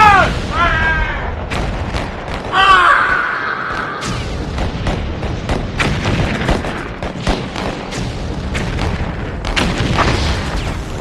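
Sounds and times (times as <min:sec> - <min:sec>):
booming blasts in battle: 0:00.0 - 0:11.0
gunfire in battle: 0:01.4 - 0:11.0.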